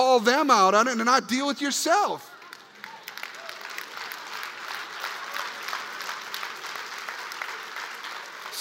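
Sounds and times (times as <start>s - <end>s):
speech: 0.0s - 2.3s
audience of teenagers and parents clapping: 2.2s - 8.5s.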